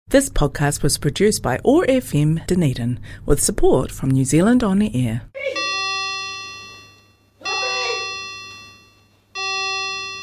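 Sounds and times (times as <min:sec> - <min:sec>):
speech: 0:00.1 - 0:05.6
clock chiming: 0:05.6 - 0:10.2.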